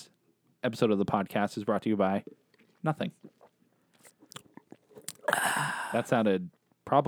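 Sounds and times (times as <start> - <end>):
speech: 0.6 - 3.4, 5.3 - 7.0
slurping sips of hot coffee: 2.6 - 6.2.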